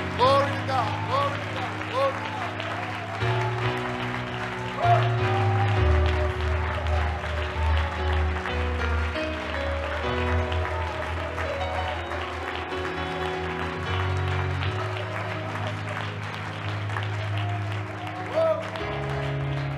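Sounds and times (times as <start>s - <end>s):
large crowd clapping and cheering: 0.0s - 19.7s
sustained keyboard or organ chords: 0.0s - 19.7s.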